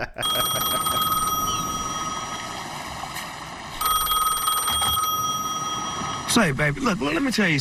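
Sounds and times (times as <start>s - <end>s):
speech: 0.0s - 0.3s, 6.3s - 7.6s
cell phone ringing with an electronic trill: 0.2s - 2.6s, 3.7s - 6.4s.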